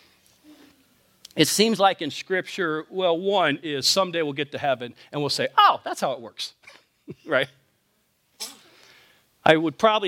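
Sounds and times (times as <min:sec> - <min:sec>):
faint hiss: 0:00.0 - 0:10.0
speech: 0:01.4 - 0:07.6, 0:09.5 - 0:10.0
young boy sneezing: 0:08.4 - 0:08.8.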